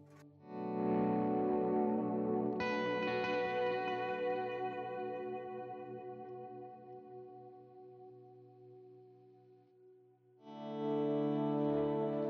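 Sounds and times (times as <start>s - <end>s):
electric guitar chords through long washy delay effects: 0.0s - 8.6s, 10.4s - 12.2s.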